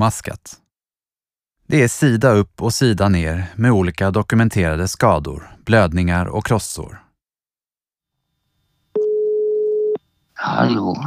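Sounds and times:
speech: 0.0s - 0.6s, 1.7s - 7.0s, 10.4s - 11.0s
outgoing phone call ringing tone: 8.9s - 10.0s.

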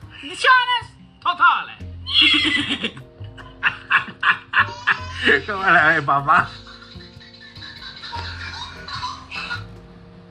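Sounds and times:
speech: 0.2s - 3.8s, 5.2s - 6.7s
horse neighing: 2.0s - 2.9s
laughter: 2.1s - 9.7s.

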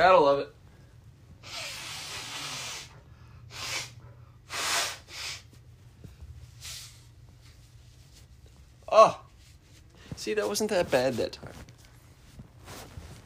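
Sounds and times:
speech: 0.0s - 0.6s, 9.0s - 9.2s, 10.2s - 11.7s
low steady hum: 0.0s - 13.2s
person blowing their nose: 1.4s - 2.9s, 3.5s - 5.6s, 6.6s - 7.1s.

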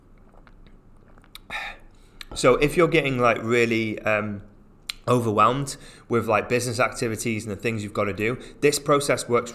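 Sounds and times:
person slurping a sip of water: 0.1s - 2.4s
faint mouth clicks: 0.2s - 2.4s, 4.8s - 5.1s
speech: 2.4s - 4.5s, 5.1s - 9.5s.

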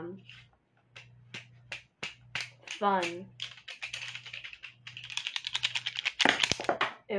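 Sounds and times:
pencils being shaken and clacking together: 2.4s - 6.8s
speech: 2.8s - 3.5s, 6.6s - 7.1s.

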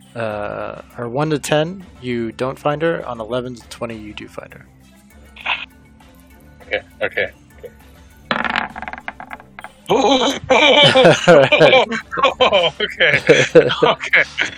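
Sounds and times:
speech: 0.2s - 4.8s, 6.7s - 7.8s, 9.9s - 14.5s
d20 die tumbling across a hard table during a tabletop game: 8.3s - 9.8s
people chuckling: 9.9s - 14.5s.

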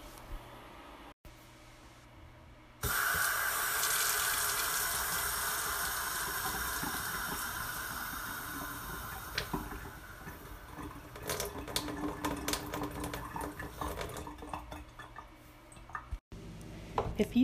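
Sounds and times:
water gushing from a kitchen faucet into a sink: 2.8s - 15.1s.

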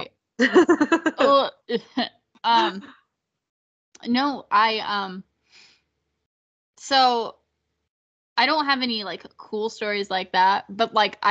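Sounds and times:
laughter: 0.4s - 1.4s, 2.6s - 2.9s
speech: 0.4s - 3.0s, 4.0s - 5.3s, 6.8s - 7.4s, 8.4s - 11.2s
person coughing in a rough voiced fit: 2.6s - 2.9s.

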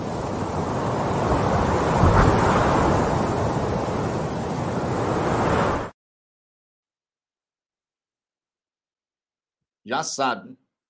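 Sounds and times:
steady roaring gust of wind: 0.0s - 5.9s
speech: 9.9s - 10.6s.

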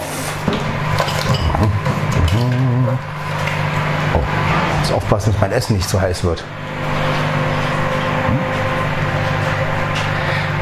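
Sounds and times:
microwave oven running: 0.0s - 10.6s
speech: 5.1s - 6.9s.

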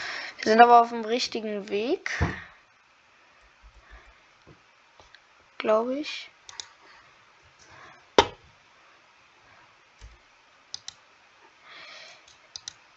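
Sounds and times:
speech: 0.4s - 2.5s, 5.6s - 6.3s
computer keyboard clicks while gaming: 10.8s - 11.0s, 12.5s - 12.8s.

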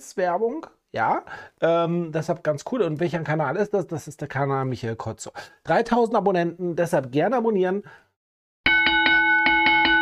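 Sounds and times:
speech: 0.0s - 8.0s
bright notification bell dings: 8.7s - 10.0s.

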